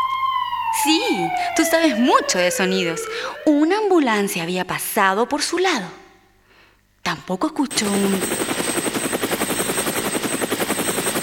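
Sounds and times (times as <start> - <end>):
speech: 0.8 - 6.0, 7.1 - 8.6
helicopter flying nearby with rotor beating: 7.7 - 11.2.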